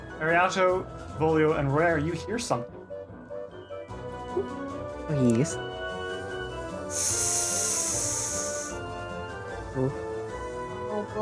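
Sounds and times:
speech: 0:00.2 - 0:02.8, 0:04.4 - 0:05.7, 0:06.9 - 0:07.4, 0:09.8 - 0:10.0, 0:11.0 - 0:11.2
snakes hissing while crawling out from under stages: 0:06.9 - 0:08.9.

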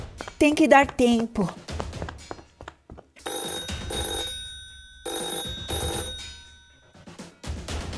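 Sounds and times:
speech: 0:00.4 - 0:01.6
telephone ringing with bright bell-like rings: 0:03.2 - 0:07.3.

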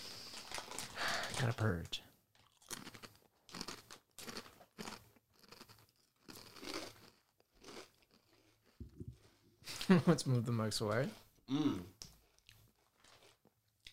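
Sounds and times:
crunching a crispy pork-flavored snack with long curved pieces: 0:00.2 - 0:01.7, 0:02.3 - 0:08.8
speech: 0:01.4 - 0:02.1, 0:09.9 - 0:12.0.

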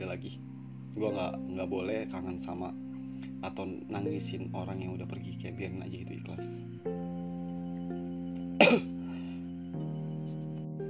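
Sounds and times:
speech: 0:00.0 - 0:07.2, 0:08.6 - 0:08.9
steady low hum: 0:00.0 - 0:10.8
faint throat clearing: 0:08.6 - 0:09.0
single sharp noisy cough close to the microphone: 0:08.6 - 0:09.0.

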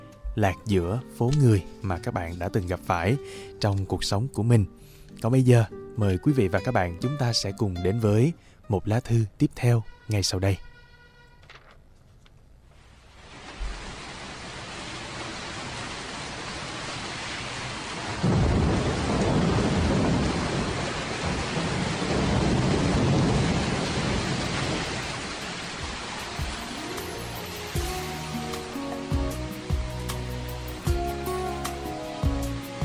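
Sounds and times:
speech: 0:00.4 - 0:10.7
heavy rain on a city street at night: 0:12.8 - 0:32.8
loud rumbling roll of thunder: 0:18.0 - 0:26.7.

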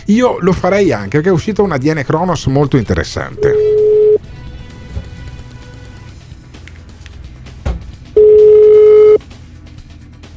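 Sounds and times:
speech: 0:00.1 - 0:03.6
telephone ringback tone from an outgoing phone call: 0:03.3 - 0:04.3, 0:08.2 - 0:09.2.

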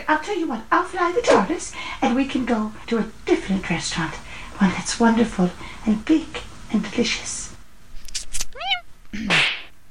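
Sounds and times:
speech: 0:00.1 - 0:07.5, 0:09.1 - 0:09.4
cat meowing: 0:08.4 - 0:08.9
harsh breathy cat yowl: 0:08.5 - 0:08.9.

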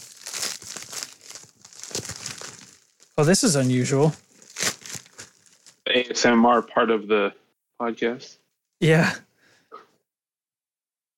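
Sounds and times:
bag being torn open by hand: 0:00.0 - 0:05.8
speech: 0:03.2 - 0:04.3, 0:06.0 - 0:09.2.

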